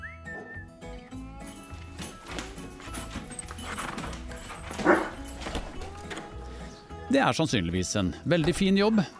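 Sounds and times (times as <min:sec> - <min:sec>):
dog barking: 0:04.7 - 0:05.3
speech: 0:07.1 - 0:09.1.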